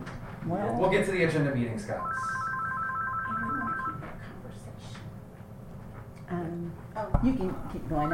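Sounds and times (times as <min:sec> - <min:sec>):
faint noise: 0:00.0 - 0:08.1
speech: 0:00.4 - 0:02.3, 0:06.3 - 0:08.1
telephone ringing with an incoming call: 0:01.8 - 0:04.3.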